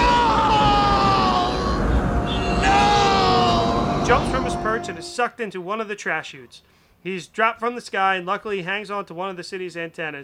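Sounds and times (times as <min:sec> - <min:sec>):
man screaming in agony: 0:00.0 - 0:05.1
rumbling noisy noise: 0:00.0 - 0:05.2
speech: 0:04.1 - 0:10.2.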